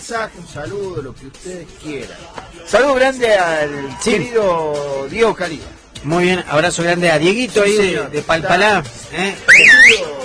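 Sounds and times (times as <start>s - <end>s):
speech: 0.1s - 10.2s
person whistling in the studio: 9.5s - 10.1s.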